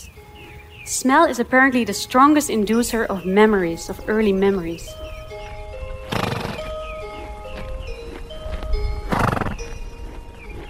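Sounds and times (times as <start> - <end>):
speech: 0.9 - 5.0
horse hooves clopping on a hard surface: 3.7 - 10.6
horses neighing and whinnying: 6.0 - 6.7, 9.1 - 9.7
horse snorting: 6.0 - 7.4, 9.0 - 10.6.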